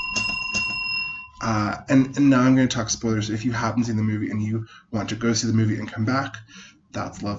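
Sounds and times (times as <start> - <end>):
small bell being struck and ringing: 0.0 - 1.4
speech: 1.4 - 7.3.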